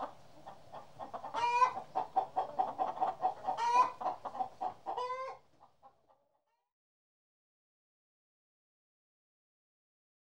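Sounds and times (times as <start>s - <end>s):
chicken strained calls: 0.0s - 5.4s
chickens clucking: 0.0s - 6.3s.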